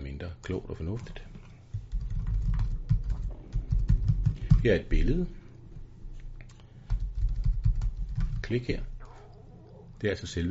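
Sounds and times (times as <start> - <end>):
speech: 0.2 - 1.3, 4.6 - 5.4, 8.5 - 8.9, 10.0 - 10.5
typing a message on a computer keyboard: 1.0 - 4.7, 6.8 - 8.6.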